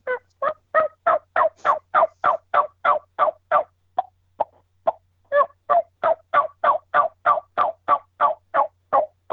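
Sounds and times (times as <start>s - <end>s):
person imitating wild turkey yelps with natural voice: 0.0s - 3.7s, 4.9s - 9.3s
person imitating wild turkey clucks: 0.0s - 9.3s.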